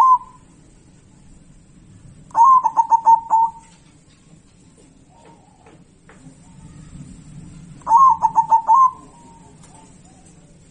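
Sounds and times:
zebra dove cooing: 0.0 - 0.4, 2.3 - 3.7, 7.8 - 10.6.

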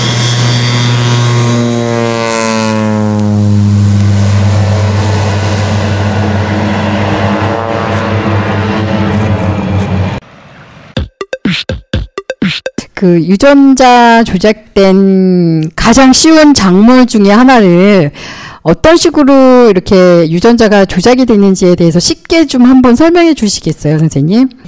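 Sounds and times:
propeller airplane engine drone while spraying herbicide over crops: 0.0 - 11.0
speech: 13.0 - 24.6.

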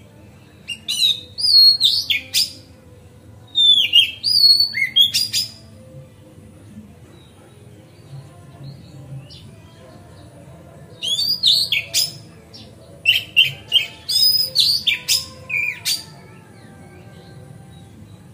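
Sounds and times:
oriental magpie-robin singing slurred falling whistles: 0.7 - 2.6, 3.5 - 5.6, 11.0 - 16.1.

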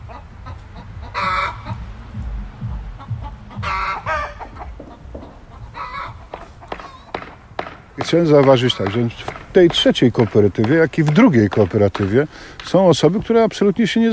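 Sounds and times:
steady low rumble: 0.0 - 6.8
neighbours' chickens clucking: 0.0 - 14.1
speech: 8.0 - 14.1.

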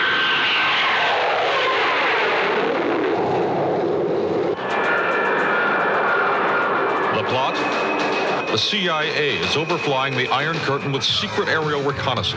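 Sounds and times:
high whining tone of a U-2 spy plane: 0.0 - 12.1
Lockheed U-2 reconnaissance spy plane jet engine roaring on takeoff: 0.0 - 12.3
speech: 8.5 - 12.3.

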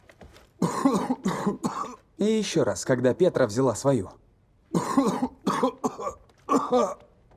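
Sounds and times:
person coughing harshly: 0.6 - 2.0, 4.7 - 7.1
speech: 2.2 - 4.2.

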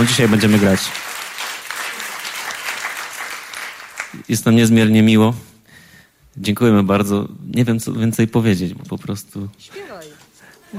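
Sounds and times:
speech: 0.0 - 1.1, 4.3 - 5.5, 6.4 - 10.1
audience applause at a live band session: 0.0 - 4.3.

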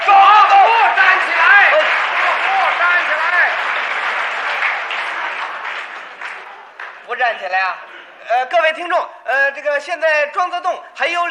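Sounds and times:
stadium crowd standing and cheering a table tennis victory: 0.0 - 7.1
speech: 7.4 - 11.2.

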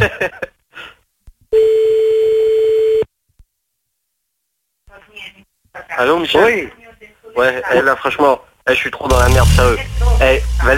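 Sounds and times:
speech: 0.0 - 0.4, 6.0 - 6.8, 7.4 - 10.7
telephone line tone while calling someone back: 1.6 - 3.1.

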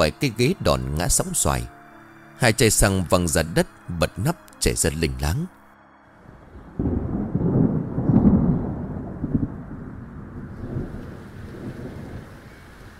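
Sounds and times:
speech: 0.0 - 1.8, 2.4 - 5.6
heavy rain: 6.2 - 12.9
deep rolling thunder: 6.3 - 12.9.

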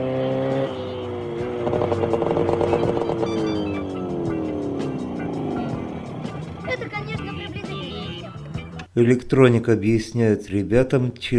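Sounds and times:
motorcycle engine droning while being ridden: 0.0 - 8.5
speech: 1.7 - 2.4, 9.0 - 11.3.

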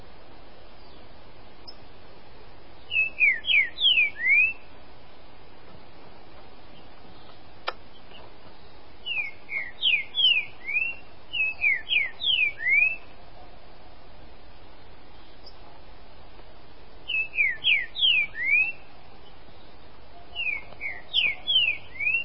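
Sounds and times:
Green-winged Saltator song of bright whistled notes: 2.8 - 4.7, 6.8 - 13.1, 17.1 - 22.2.

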